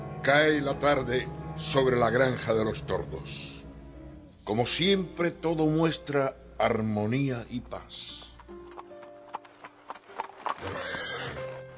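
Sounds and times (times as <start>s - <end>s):
speech: 0.2s - 3.6s, 4.5s - 8.2s
horse hooves clopping on a hard surface at a farmhouse: 8.0s - 11.7s
horse giving a loud drawn-out neigh: 10.2s - 11.7s.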